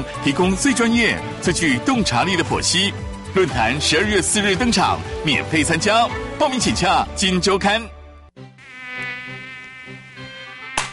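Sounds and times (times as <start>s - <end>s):
speech: 0.0s - 8.0s
mosquito buzzing: 8.4s - 10.9s
short sharp smack: 10.8s - 10.9s.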